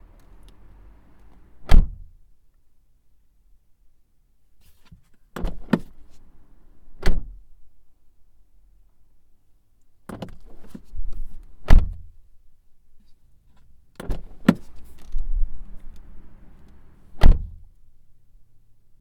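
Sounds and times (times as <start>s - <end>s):
Mazda 6 III 2.0 Skyactive G car doors opening and closing from interior: 0.0s - 2.2s, 5.3s - 7.5s, 10.1s - 12.1s, 14.0s - 17.7s.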